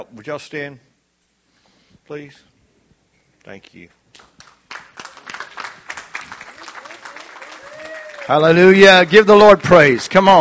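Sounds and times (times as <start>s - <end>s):
speech: 0.0s - 0.9s, 2.1s - 2.5s, 3.4s - 4.3s, 8.3s - 10.3s
room full of people applauding: 4.2s - 10.3s.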